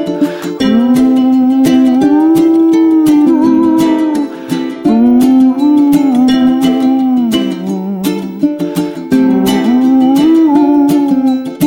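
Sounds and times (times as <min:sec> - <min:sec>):
music loop: 0:00.2 - 0:11.5.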